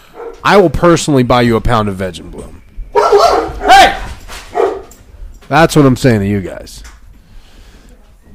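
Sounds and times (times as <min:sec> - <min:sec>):
dogs barking: 0:00.0 - 0:00.5, 0:02.9 - 0:05.0
speech: 0:00.4 - 0:02.6, 0:05.5 - 0:06.9.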